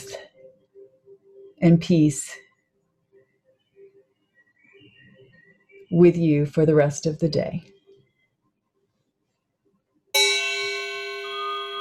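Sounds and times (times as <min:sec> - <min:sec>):
speech: 0:01.6 - 0:02.4, 0:05.9 - 0:07.7
meditation chime ringing: 0:10.2 - 0:11.8.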